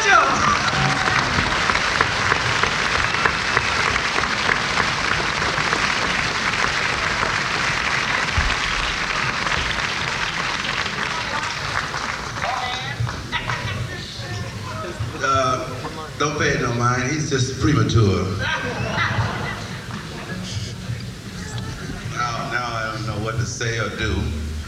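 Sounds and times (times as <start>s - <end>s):
whoops: 0.0s - 1.9s
laughter: 0.0s - 23.2s
audience applause: 0.0s - 24.6s
speech: 17.6s - 18.8s, 23.6s - 24.4s.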